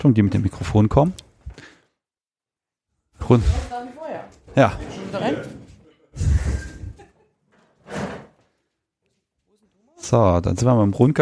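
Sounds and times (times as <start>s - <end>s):
speech: 0.0s - 1.7s, 3.2s - 5.6s, 10.0s - 11.2s
door opening and closing: 6.4s - 8.4s.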